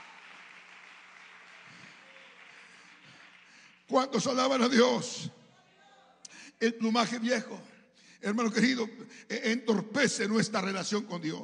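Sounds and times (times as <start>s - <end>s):
audience applauding at a church service: 0.0s - 4.7s
speech: 3.9s - 5.4s, 6.6s - 11.4s.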